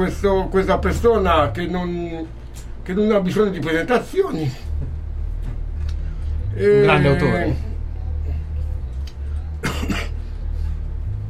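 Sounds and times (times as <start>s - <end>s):
speech: 0.0s - 4.9s, 6.6s - 7.7s
low steady hum: 0.0s - 11.2s
person coughing with a slight cough from the heat: 9.6s - 10.2s.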